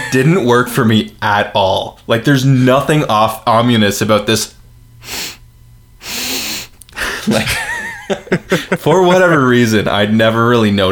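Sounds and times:
speech: 0:00.1 - 0:05.4, 0:07.2 - 0:07.6, 0:08.3 - 0:10.8
person imitating a Nazgul sniffing with breathy hissing inhales: 0:05.0 - 0:05.4, 0:06.0 - 0:07.1
laughter: 0:07.0 - 0:10.2.

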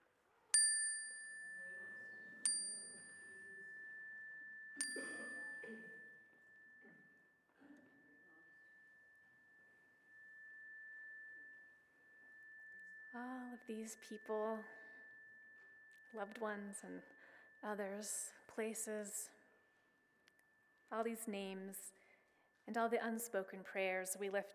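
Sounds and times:
bright chime struck during spoken prayer: 0:00.6 - 0:18.9
speech: 0:13.2 - 0:14.8, 0:16.1 - 0:19.4, 0:20.9 - 0:22.0, 0:22.7 - 0:24.5.

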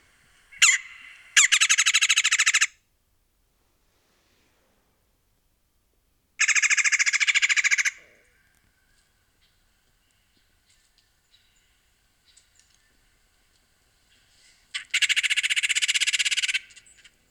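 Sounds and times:
red-bellied woodpecker harsh rolling churr call: 0:00.0 - 0:02.7, 0:06.4 - 0:17.2
faint chirps: 0:08.0 - 0:17.2.

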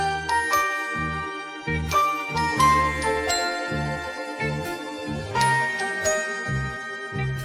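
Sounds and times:
bright loop of ringing bells and vibraphone tones: 0:00.0 - 0:07.4.

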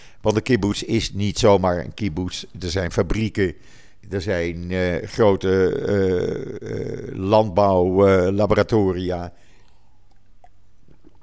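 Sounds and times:
low hum: 0:00.0 - 0:11.2
speech: 0:00.2 - 0:09.4
person sipping water: 0:05.4 - 0:07.3, 0:09.3 - 0:11.2
soft wet mouth clicks: 0:09.5 - 0:11.2.

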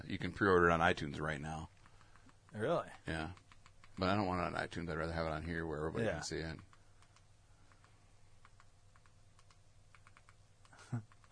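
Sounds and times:
low hum: 0:00.0 - 0:11.2
speech: 0:00.1 - 0:01.7, 0:02.5 - 0:03.4, 0:04.0 - 0:06.7, 0:10.9 - 0:11.1
soft typing on a computer keyboard: 0:03.2 - 0:04.2, 0:06.6 - 0:11.2.

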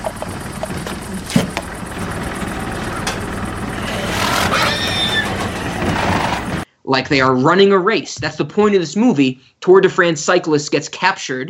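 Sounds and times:
engine-like rumble: 0:00.0 - 0:06.6
horse whinnying in a film soundtrack: 0:03.8 - 0:06.4
speech: 0:06.9 - 0:11.4.

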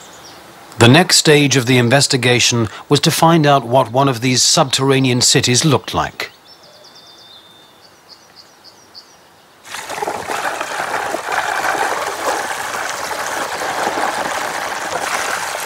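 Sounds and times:
speech: 0:00.8 - 0:06.3
liquid cement pouring down tubes: 0:09.7 - 0:15.6.

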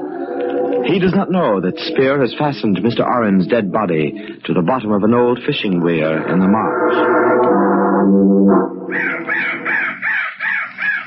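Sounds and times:
speech: 0:00.4 - 0:09.7
crow cawing harshly: 0:08.9 - 0:11.0.

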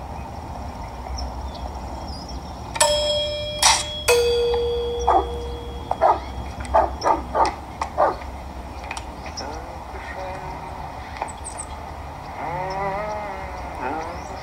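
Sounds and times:
low hum: 0:00.9 - 0:14.4
doorbell ringing with two chime tones: 0:02.8 - 0:07.4
dog barking in short bursts: 0:05.0 - 0:05.3, 0:06.0 - 0:08.2.

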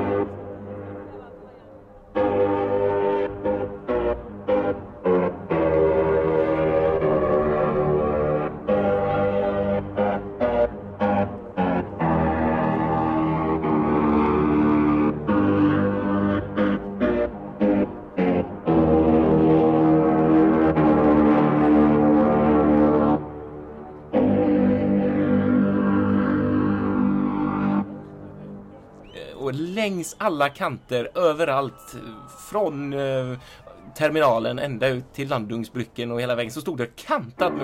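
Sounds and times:
ship's horn playing rock song melodies leaving Hamburg harbour: 0:00.0 - 0:34.2, 0:37.4 - 0:37.6
speech: 0:29.9 - 0:37.6.

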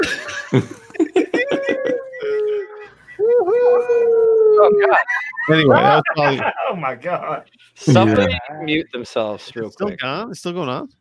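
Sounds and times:
laughing voices with echo feedback on a call: 0:00.0 - 0:07.0
speech: 0:00.5 - 0:00.8, 0:04.6 - 0:10.9.

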